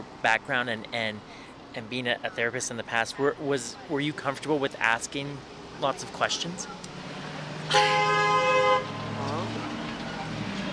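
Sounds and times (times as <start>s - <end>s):
faint traffic noise: 0.0s - 10.7s
speech: 0.2s - 6.9s, 7.7s - 8.0s
car horn honking: 7.7s - 9.0s.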